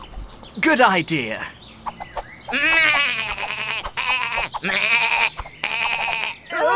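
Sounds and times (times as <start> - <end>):
speech: 0.6 - 1.6, 2.5 - 3.2, 4.6 - 5.0
goat bleating: 2.5 - 6.6.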